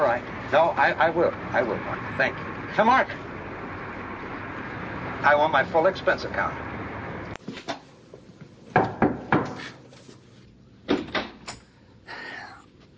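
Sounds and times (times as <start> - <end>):
speech: 0.0 - 3.2, 5.2 - 6.6
heavy pounding on a wooden door: 8.8 - 9.6.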